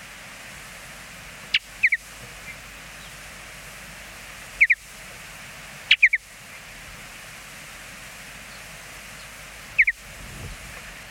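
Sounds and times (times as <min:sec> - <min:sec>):
quiet background hiss: 0:00.0 - 0:11.1
mountain bluebird soft high chirped notes: 0:09.2 - 0:10.0.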